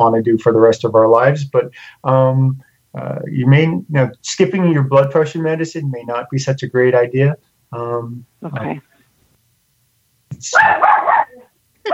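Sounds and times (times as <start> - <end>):
speech: 0.0 - 8.9, 10.4 - 11.0
dog barking: 10.5 - 11.9.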